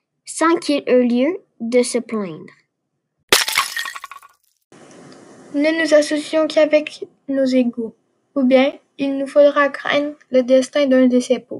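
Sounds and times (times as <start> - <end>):
speech: 0.4 - 2.6, 5.5 - 11.5
clay pot fragments clattering: 3.3 - 4.5
clay pot shattering: 3.3 - 4.5
soft steady hiss: 4.8 - 11.5.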